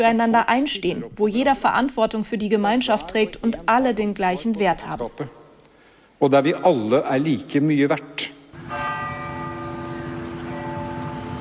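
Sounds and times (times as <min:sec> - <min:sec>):
speech: 0:00.0 - 0:05.4, 0:06.2 - 0:08.9
church bells ringing: 0:08.6 - 0:11.3.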